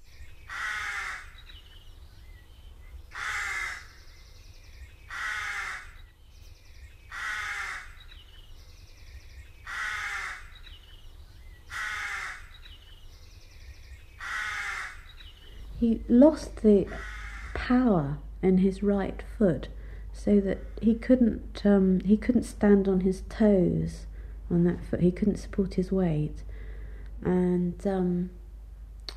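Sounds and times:
faint low rumble: 0.0 - 29.1
crow cawing loudly and harshly: 0.5 - 1.5, 3.1 - 4.0, 5.1 - 6.0, 7.1 - 8.1, 9.6 - 10.6, 11.7 - 12.6, 14.2 - 15.2, 16.9 - 17.6
speech: 15.8 - 17.1, 17.7 - 26.5, 27.2 - 28.4.

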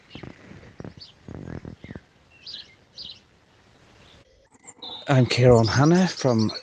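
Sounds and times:
rustling: 0.0 - 2.1
dawn chorus birdsong at the Belgian-French border near Charleroi: 0.0 - 6.6
speech: 5.1 - 6.6.

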